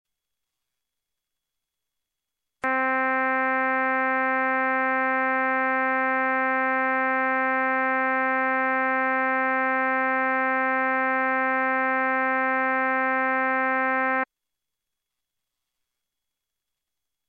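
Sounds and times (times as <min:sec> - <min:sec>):
trumpet playing middle C, anechoic: 0:02.6 - 0:14.3.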